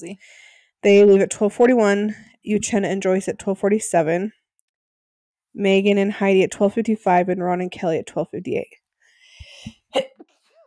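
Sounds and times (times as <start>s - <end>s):
speech: 0.0s - 4.4s, 5.6s - 8.8s, 9.6s - 10.2s
person sneezing: 9.4s - 10.3s.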